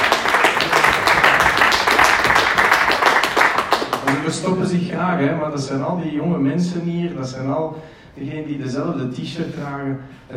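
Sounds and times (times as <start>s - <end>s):
crowd applauding: 0.0s - 4.5s
speech: 4.4s - 10.3s.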